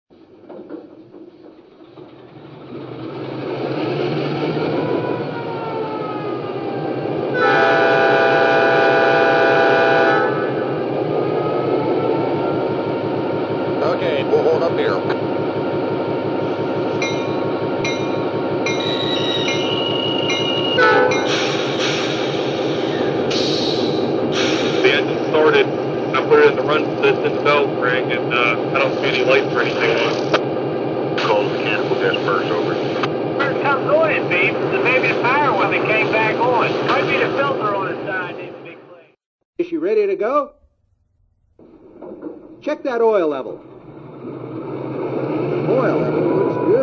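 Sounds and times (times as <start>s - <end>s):
EMD F3 diesel locomotive: 0.1s - 40.1s, 40.9s - 46.8s.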